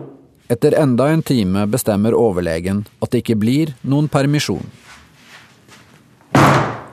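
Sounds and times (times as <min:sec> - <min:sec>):
speech: 0:00.5 - 0:04.9
woman kicking the door to her room with a heavy thud: 0:06.3 - 0:06.8.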